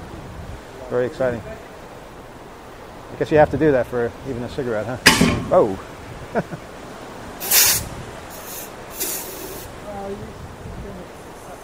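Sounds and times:
speech: 0.9s - 1.6s, 3.1s - 6.7s
fire extinguisher spraying: 7.4s - 9.7s.

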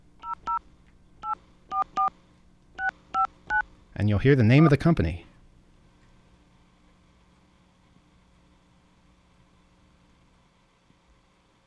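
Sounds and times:
telephone touch-tone dialing of an 800 number: 0.2s - 0.6s, 2.8s - 3.6s
speech: 4.0s - 5.3s.

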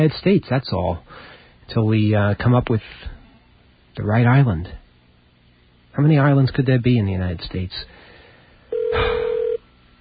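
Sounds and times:
speech: 0.0s - 3.2s, 4.0s - 4.8s, 6.0s - 8.0s
telephone ringing with a single electronic tone: 8.7s - 9.6s.

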